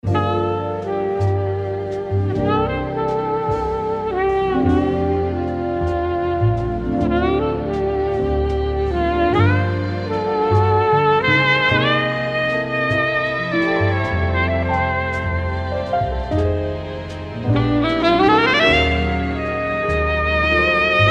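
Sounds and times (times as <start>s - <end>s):
saxophone solo: 0.0s - 21.1s.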